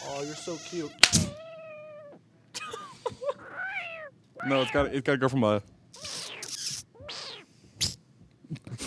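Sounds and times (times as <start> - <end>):
voice imitating a video-game spider death sound: 0.0 - 2.2, 3.4 - 5.0, 5.9 - 8.0
speech: 0.2 - 1.5, 4.4 - 6.1.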